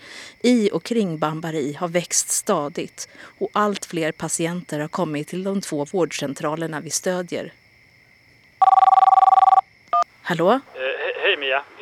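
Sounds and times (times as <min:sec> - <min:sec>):
speech: 0:00.4 - 0:07.6, 0:08.6 - 0:08.9, 0:10.3 - 0:11.8
telephone ringing: 0:08.6 - 0:09.7.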